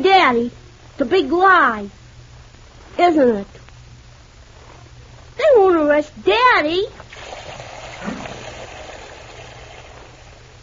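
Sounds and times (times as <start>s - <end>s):
speech: 0.2s - 2.0s, 3.0s - 3.6s, 5.6s - 7.0s
tap water running at full force: 7.1s - 10.6s.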